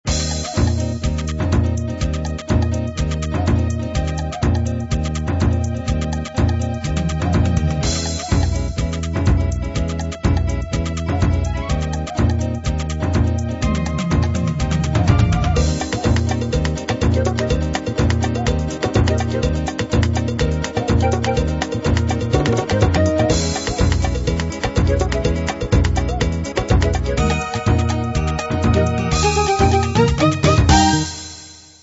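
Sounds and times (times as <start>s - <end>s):
Brazilian jazz music: 0.0s - 31.8s.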